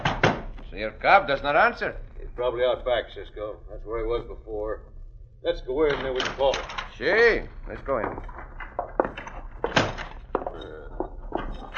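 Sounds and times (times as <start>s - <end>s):
back door opening and closing: 0.0s - 0.7s, 5.8s - 7.0s, 7.6s - 11.7s
speech: 0.8s - 8.5s.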